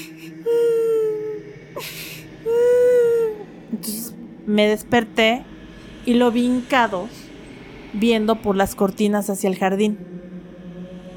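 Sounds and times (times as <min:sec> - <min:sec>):
voice imitating a child's whimpering cry: 0:00.0 - 0:03.5
speech: 0:01.8 - 0:02.6, 0:03.9 - 0:05.5, 0:06.1 - 0:07.2, 0:07.9 - 0:10.2.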